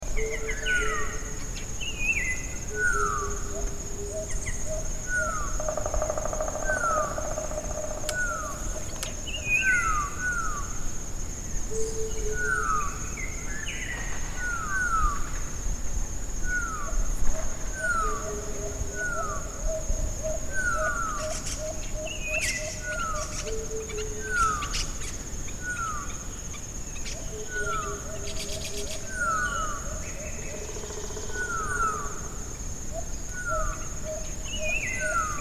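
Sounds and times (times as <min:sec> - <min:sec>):
birds in morning chorus in Subic: 0:00.0 - 0:35.3.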